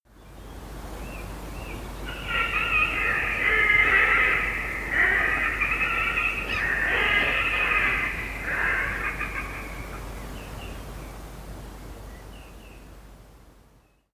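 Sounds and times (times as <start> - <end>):
Red-necked Grebe Podiceps grisegena calling: 2.1 - 10.2.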